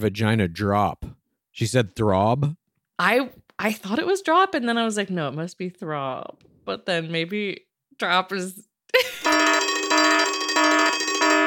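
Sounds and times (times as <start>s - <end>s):
speech: 0.0s - 9.2s
electronic alarm beeping: 9.3s - 11.4s.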